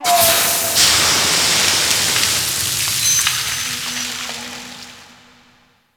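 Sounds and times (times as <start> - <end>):
small ocean steam blast: 0.0 - 4.4.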